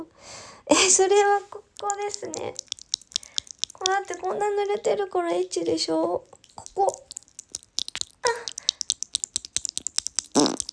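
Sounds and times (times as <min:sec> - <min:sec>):
speech: 0:00.7 - 0:02.7, 0:03.8 - 0:07.0
rapid soft clicking and tapping: 0:01.8 - 0:04.4, 0:06.3 - 0:10.7
farts: 0:10.2 - 0:10.7.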